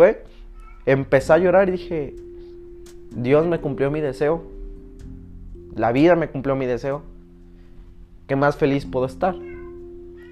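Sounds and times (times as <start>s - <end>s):
speech: 0.0s - 2.3s, 3.1s - 4.6s, 5.8s - 7.1s, 8.3s - 9.5s
cat meowing: 0.5s - 1.0s, 9.3s - 10.3s.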